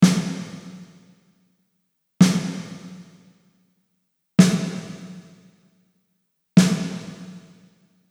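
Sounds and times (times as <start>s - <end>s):
snare drum with plate reverb: 0.0s - 1.2s, 2.2s - 3.3s, 4.4s - 5.5s, 6.6s - 7.7s.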